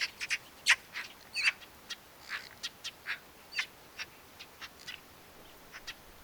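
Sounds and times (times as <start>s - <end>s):
Eurasian magpie Pica pica uttering harsh clipped notes: 0.0s - 3.7s.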